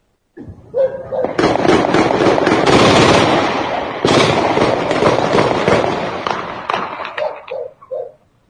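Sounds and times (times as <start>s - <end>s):
sustained rapid bursts of gunfire in an intense exchange: 1.2s - 7.5s.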